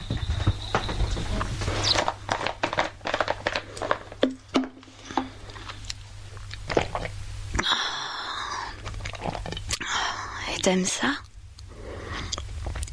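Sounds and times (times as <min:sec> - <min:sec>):
low steady hum: 0:00.0 - 0:12.9
person gulping and swallowing while drinking: 0:03.7 - 0:09.9, 0:11.6 - 0:12.9
speech: 0:10.6 - 0:11.2.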